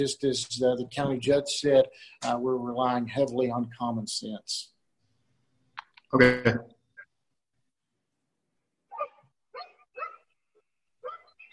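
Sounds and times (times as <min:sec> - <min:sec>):
speech: 0:00.0 - 0:04.7, 0:06.1 - 0:06.8
dog barking: 0:08.9 - 0:10.3, 0:11.0 - 0:11.4.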